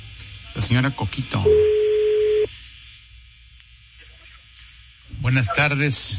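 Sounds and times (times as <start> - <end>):
speech: 0.6 - 1.8, 5.3 - 6.1
mid-pitched telephone ringback tone on an outgoing call: 1.5 - 2.5.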